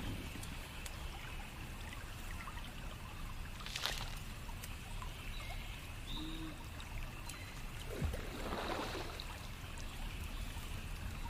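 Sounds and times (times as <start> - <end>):
forest pond water trickling: 0.0 - 11.2.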